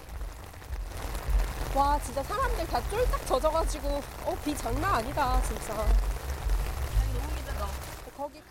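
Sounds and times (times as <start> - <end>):
heavy rain pouring down: 0.0 - 8.5.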